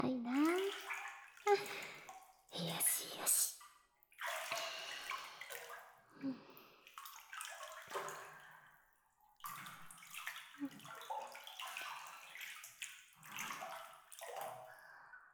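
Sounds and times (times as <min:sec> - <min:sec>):
hot water sloshing and splashing in a tub during a bath: 0:00.0 - 0:15.3
water dripping: 0:00.3 - 0:05.8, 0:06.5 - 0:08.5, 0:09.4 - 0:14.8
speech: 0:01.5 - 0:01.9, 0:03.2 - 0:03.6.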